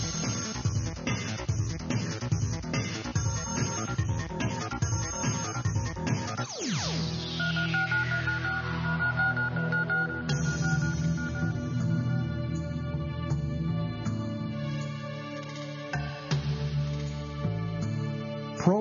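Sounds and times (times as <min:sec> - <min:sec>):
energetic production music bed with a driving beat: 0:00.0 - 0:18.8
telephone dialing tones: 0:07.8 - 0:10.8.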